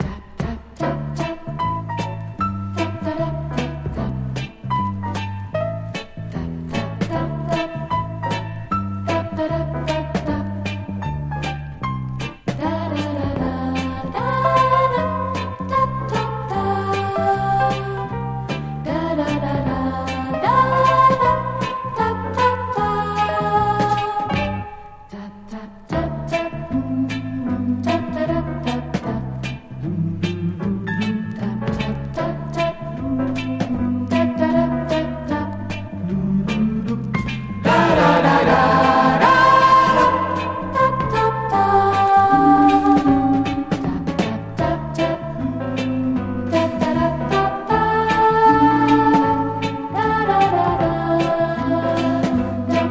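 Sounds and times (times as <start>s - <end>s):
piano: 0.0s - 52.8s
voices: 37.6s - 43.2s.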